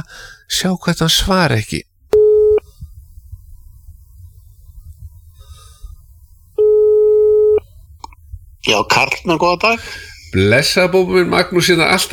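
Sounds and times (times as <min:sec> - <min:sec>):
speech: 0:00.0 - 0:01.9, 0:08.6 - 0:12.1
telephone ringing on an incoming call: 0:06.6 - 0:07.6.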